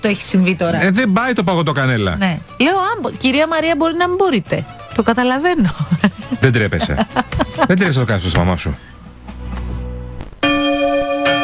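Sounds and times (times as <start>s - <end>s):
speech: 0.0s - 9.0s
laughter: 5.6s - 8.9s
church bells ringing: 10.4s - 11.4s.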